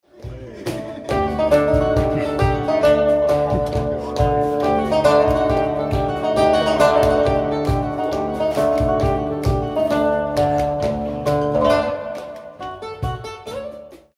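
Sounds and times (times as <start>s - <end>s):
zambra music: 0.0s - 14.1s.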